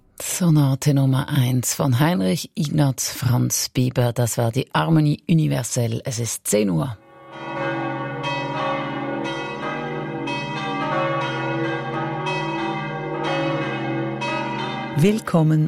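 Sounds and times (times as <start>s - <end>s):
speech: 0.4s - 7.6s, 15.0s - 15.6s
Catholic church bells pealing: 7.0s - 15.6s.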